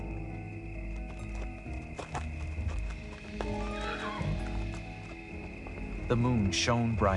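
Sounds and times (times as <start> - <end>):
horse hooves clip-clopping: 0.0 - 7.1
horse neighing: 3.4 - 4.6
speech: 6.1 - 7.1.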